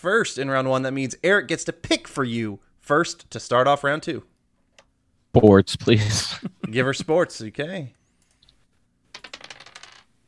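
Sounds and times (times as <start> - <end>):
speech: 0.0 - 4.3, 5.3 - 8.0
dice rattling and clattering across a hard surface: 9.1 - 10.1.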